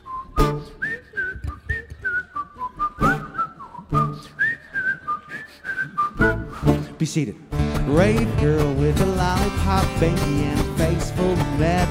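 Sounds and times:
cheerful whistled melody: 0.0 - 6.9
speech: 7.0 - 11.8.

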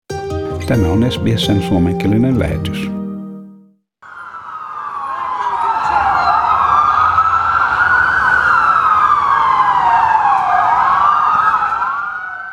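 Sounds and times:
speech: 0.7 - 3.0
ambulance sirens wailing on a busy street: 4.0 - 12.5.

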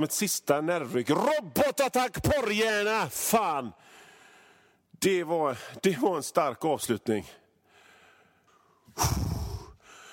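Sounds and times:
speech: 0.0 - 4.0, 5.0 - 7.4, 9.0 - 9.2
heavy breathy gasp: 7.7 - 10.1.

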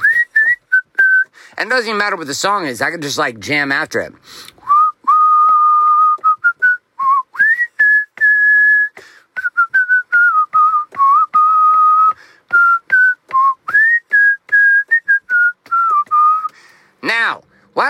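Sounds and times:
person whistling a lively melody: 0.0 - 1.4, 4.6 - 16.6
speech: 1.6 - 4.5.

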